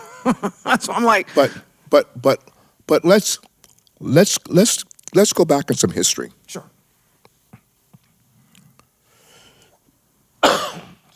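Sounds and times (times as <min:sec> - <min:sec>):
speech: 0:00.2 - 0:06.7
raspy breathing: 0:08.3 - 0:09.8
short dry coughs: 0:10.4 - 0:11.1.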